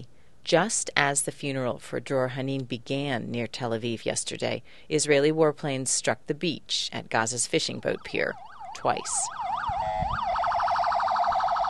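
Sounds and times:
speech: 0.0s - 9.8s
ambulance siren as ambulances rush to a Gaza beach after an airstrike: 7.8s - 11.6s.

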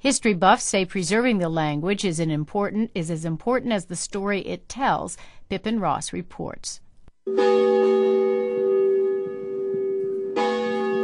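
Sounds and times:
speech: 0.0s - 8.4s
church bell ringing for Sunday service: 7.3s - 11.0s.

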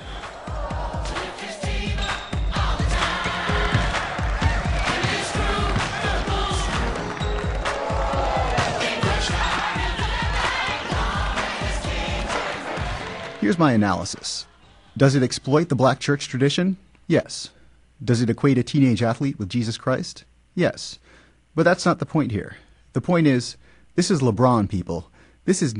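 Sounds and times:
lively cheering crowd: 0.0s - 15.2s
basketball bouncing on a hard floor in a church: 3.6s - 6.8s
speech: 13.5s - 25.7s.

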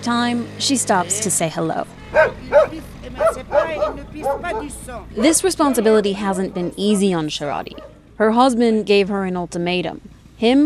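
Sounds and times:
low rumble: 0.0s - 10.6s
speech: 0.0s - 10.6s
stray dogs barking: 2.0s - 8.1s.

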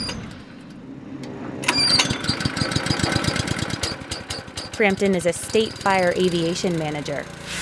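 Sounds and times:
heated pressure washer pump starting up and chugging: 2.0s - 7.6s
speech: 4.8s - 7.4s.

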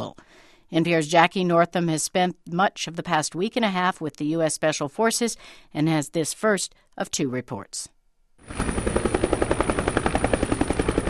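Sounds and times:
speech: 0.0s - 9.0s
helicopter rotor thumping: 8.4s - 11.0s.

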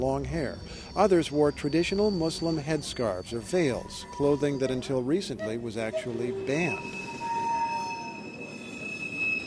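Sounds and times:
speech: 0.0s - 7.1s
passenger train rumbling on rails: 0.0s - 9.4s
passenger train wheels squealing on rails: 0.5s - 9.4s.

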